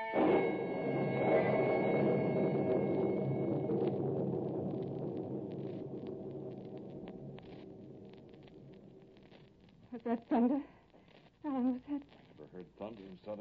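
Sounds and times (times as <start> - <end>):
deep thunder rumbling: 0.2 - 9.9
speech: 10.0 - 10.7, 11.9 - 13.4.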